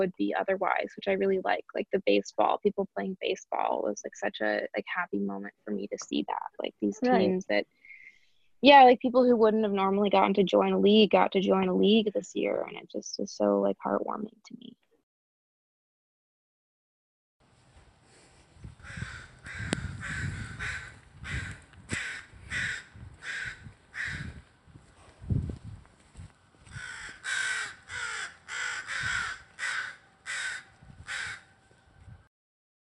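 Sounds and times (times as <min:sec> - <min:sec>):
speech: 0:00.0 - 0:07.8, 0:08.6 - 0:14.8
chorus of crows cawing outdoors in the morning: 0:18.8 - 0:24.3, 0:26.7 - 0:31.5.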